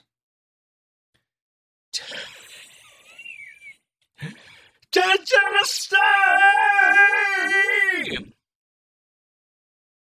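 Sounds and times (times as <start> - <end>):
short breathy gasp: 4.2 - 4.8
speech: 4.9 - 8.4
loud anguished scream with wavering pitch: 5.2 - 8.3.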